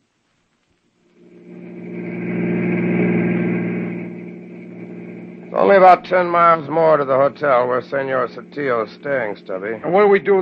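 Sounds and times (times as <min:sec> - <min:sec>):
faint higher whine of car engine: 0:00.0 - 0:10.4
car engine drone: 0:01.0 - 0:10.4
speech: 0:05.7 - 0:10.4.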